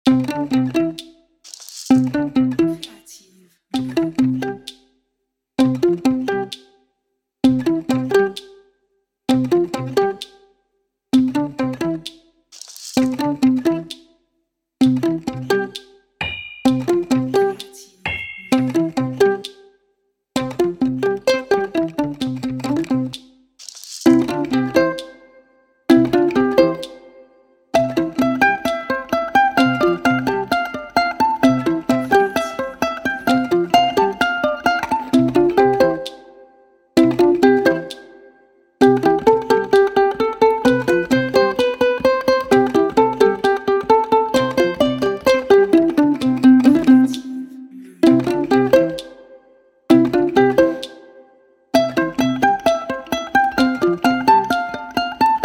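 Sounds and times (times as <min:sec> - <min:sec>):
ukulele: 0:00.0 - 0:01.2, 0:01.9 - 0:03.0, 0:03.7 - 0:04.8, 0:05.6 - 0:06.8, 0:07.4 - 0:08.6, 0:09.3 - 0:10.4, 0:11.1 - 0:12.3, 0:13.0 - 0:14.1, 0:14.8 - 0:19.7, 0:20.4 - 0:23.3, 0:24.0 - 0:55.4.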